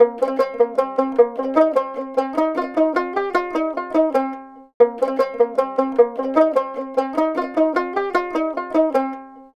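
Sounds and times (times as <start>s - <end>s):
dotara loop: 0.0s - 9.5s.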